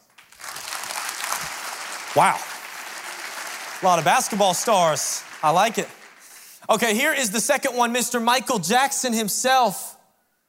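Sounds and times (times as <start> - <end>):
crowd applauding: 0.0 - 7.0
speech: 2.2 - 2.5, 3.8 - 6.0, 6.7 - 9.9.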